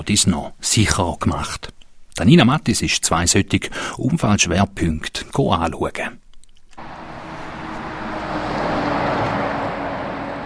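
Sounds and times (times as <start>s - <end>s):
speech: 0.0s - 6.2s
low engine rumble: 6.8s - 10.4s
road traffic rolling through an intersection: 6.8s - 10.4s.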